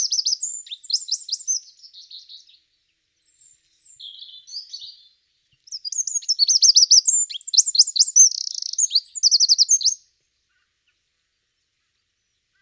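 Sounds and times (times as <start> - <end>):
Eurasian wren singing: 0.0 - 10.0.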